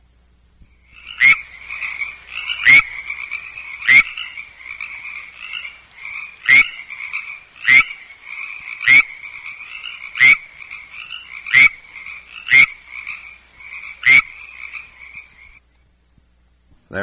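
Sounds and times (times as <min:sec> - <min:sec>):
frog mating calls: 0:00.7 - 0:15.6.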